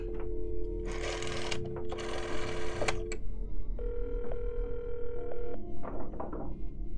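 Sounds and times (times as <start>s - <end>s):
sustained electronic telephone tone: 0.0s - 6.9s
telephone dial tone: 0.8s - 3.0s, 3.8s - 5.7s.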